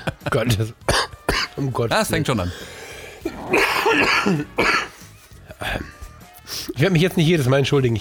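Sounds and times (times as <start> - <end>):
speech: 0.0 - 0.9, 1.6 - 2.8, 3.5 - 4.8, 6.6 - 7.9
harsh raspy coughing fit: 0.9 - 1.6, 3.3 - 5.0.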